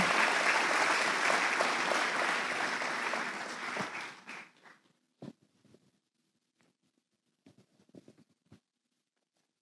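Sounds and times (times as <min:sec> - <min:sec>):
crowd applauding loudly: 0:00.0 - 0:04.8.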